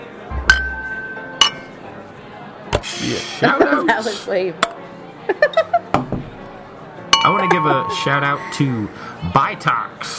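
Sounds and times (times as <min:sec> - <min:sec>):
low murmur: 0:00.0 - 0:10.1
glasses clinking in a toast: 0:00.5 - 0:01.8, 0:07.2 - 0:08.7
speech: 0:02.9 - 0:05.7, 0:07.3 - 0:10.1.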